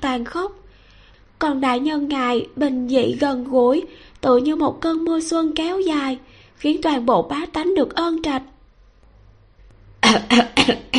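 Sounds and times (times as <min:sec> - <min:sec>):
speech: 0:00.0 - 0:00.6, 0:01.4 - 0:08.5, 0:10.1 - 0:10.9
faint throat sound: 0:10.0 - 0:10.9
repeated coughing after choking on saliva: 0:10.0 - 0:10.9.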